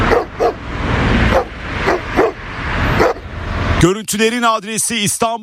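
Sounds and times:
stray street dogs barking while chasing a person in a car park: 0:00.1 - 0:00.6, 0:01.2 - 0:03.3
speech: 0:03.8 - 0:05.4.

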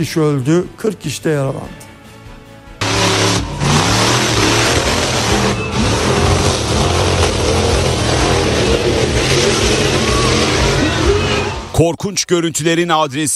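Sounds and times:
speech: 0:00.0 - 0:01.8, 0:11.8 - 0:13.3
heavily modified monster truck engine revving at a monster truck event in Popayán, Colombia: 0:02.8 - 0:11.8.

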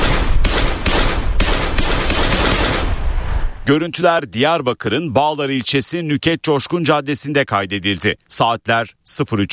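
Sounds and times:
gunfire as a full magazine is emptied at a jewellery shop front on a Diyarbakır street: 0:00.0 - 0:03.0
speech: 0:03.7 - 0:09.5.

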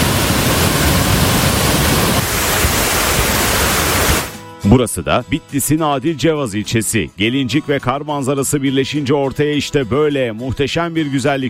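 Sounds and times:
snowmelt-fed waterfalls and streams rushing on a mountain in Hakkari: 0:00.0 - 0:04.4
speech: 0:04.6 - 0:11.4.

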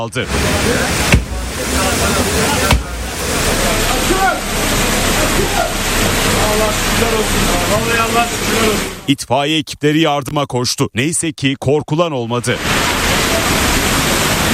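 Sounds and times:
floodwater rushing: 0:00.0 - 0:09.3, 0:12.4 - 0:14.5
speech: 0:00.0 - 0:13.6.

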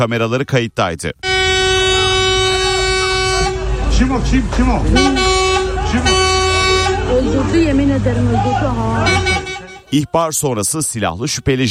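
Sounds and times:
speech: 0:00.0 - 0:01.3, 0:04.0 - 0:05.3, 0:05.9 - 0:06.4, 0:07.1 - 0:09.3, 0:09.9 - 0:11.6
vehicle horn blaring: 0:01.2 - 0:10.2.

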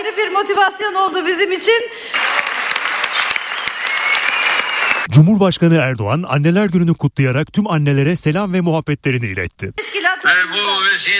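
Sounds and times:
speech: 0:00.0 - 0:02.5, 0:05.1 - 0:11.1
crowd clapping in a hall after a speech: 0:02.1 - 0:05.1.

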